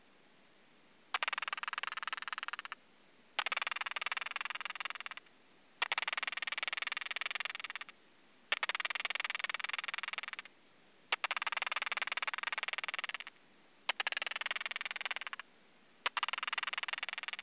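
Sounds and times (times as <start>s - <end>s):
Leptophyes discoidalis calls in lab at 26°C via bat detector at 40 kHz: 1.1s - 2.8s, 3.4s - 5.2s, 5.8s - 7.9s, 8.5s - 10.5s, 11.2s - 15.4s, 16.0s - 17.4s.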